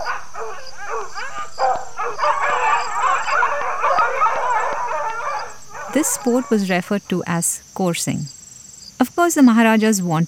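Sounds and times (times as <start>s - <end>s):
pack of hunting hounds barking and howling: 0.0s - 7.2s
speech: 6.0s - 8.4s, 9.1s - 10.2s.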